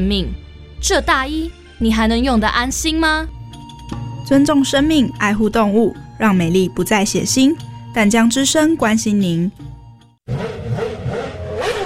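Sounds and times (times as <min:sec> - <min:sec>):
speech: 0:00.0 - 0:10.4
scooter engine revving as throttle is opened: 0:10.3 - 0:11.8.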